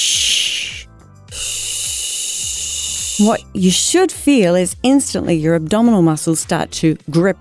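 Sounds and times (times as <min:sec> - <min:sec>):
person exhaling on a sustained shh hiss in a singing breathing exercise: 0:00.0 - 0:03.4
speech: 0:03.2 - 0:07.3.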